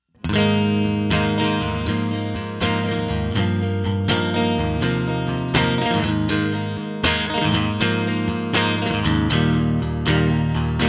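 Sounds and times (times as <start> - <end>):
guitar amp model on a multi-effects processor: 0.0 - 10.8.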